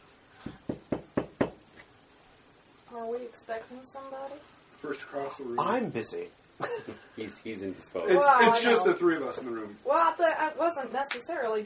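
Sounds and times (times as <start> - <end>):
knocking on a door: 0.4 - 1.6
speech: 3.0 - 11.6.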